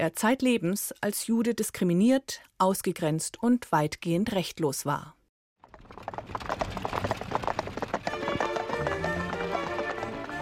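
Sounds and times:
speech: 0.0s - 5.2s
hoofbeats of galloping horses pulling a coach: 5.6s - 10.3s
rattling coach with creaking wheels: 5.6s - 10.3s.

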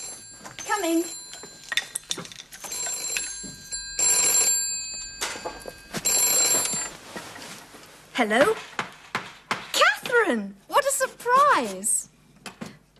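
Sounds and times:
telephone bell ringing: 0.0s - 1.9s, 2.6s - 7.1s
speech: 0.8s - 1.2s, 8.2s - 8.8s, 10.3s - 10.7s, 11.3s - 12.0s.

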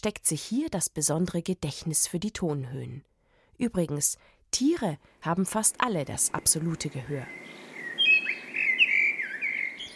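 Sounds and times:
speech: 0.0s - 7.6s
birds chirping and twittering: 6.2s - 9.9s.

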